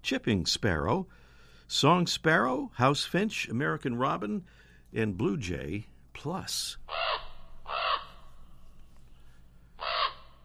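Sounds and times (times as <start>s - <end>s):
speech: 0.0s - 7.0s
common raven giving harsh, hoarse croaks: 6.8s - 8.6s, 9.8s - 10.4s.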